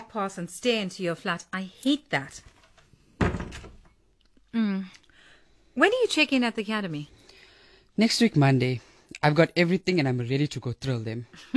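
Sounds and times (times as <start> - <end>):
speech: 0.1 - 2.5, 4.5 - 5.0, 5.8 - 7.2, 8.0 - 11.5
door closing with a dull solid thump: 3.2 - 3.9.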